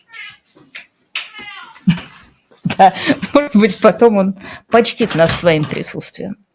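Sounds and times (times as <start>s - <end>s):
cat meowing in a studio: 1.2s - 1.8s
speech: 2.8s - 6.4s.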